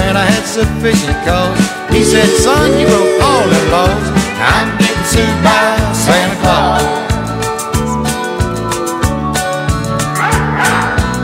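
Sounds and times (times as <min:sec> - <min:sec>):
musical backing: 0:00.0 - 0:11.2
speech: 0:00.2 - 0:07.0
dog yipping barks: 0:10.2 - 0:11.0.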